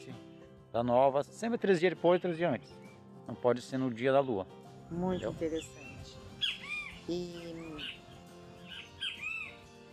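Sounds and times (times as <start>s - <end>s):
steady outdoor noise: 0.0s - 9.9s
speech: 0.7s - 6.2s, 7.1s - 8.0s
many other birds calling while flying overhead: 1.7s - 9.9s
parrots squawking while flying overhead: 6.4s - 8.0s, 8.7s - 9.6s.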